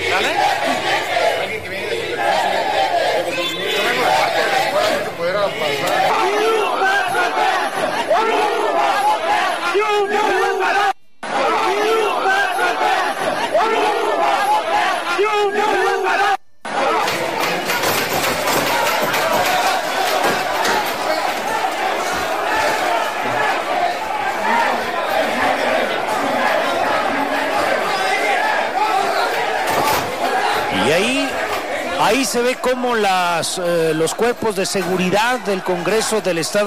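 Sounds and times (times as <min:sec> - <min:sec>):
large protest crowd shouting and chanting: 0:00.0 - 0:36.6
speech: 0:32.3 - 0:36.6.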